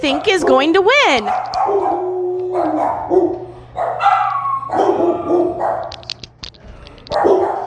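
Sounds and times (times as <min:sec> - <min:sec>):
speech: 0:00.0 - 0:02.0, 0:02.6 - 0:03.4
dog barking and howling: 0:00.0 - 0:06.0, 0:07.1 - 0:07.6
dog yipping: 0:00.4 - 0:06.0.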